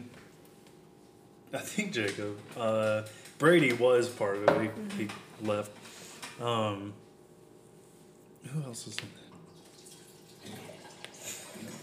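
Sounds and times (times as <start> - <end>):
speech: 1.5 - 7.0, 8.4 - 9.2
water pouring from a dispenser: 9.5 - 11.8.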